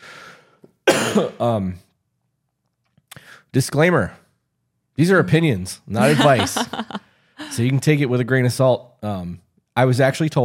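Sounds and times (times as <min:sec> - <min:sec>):
person clearing their throat: 0:00.9 - 0:01.5
person coughing: 0:00.9 - 0:01.5, 0:06.0 - 0:06.6
speech: 0:01.1 - 0:01.9, 0:03.5 - 0:04.2, 0:05.0 - 0:10.4
laughter: 0:06.0 - 0:07.6.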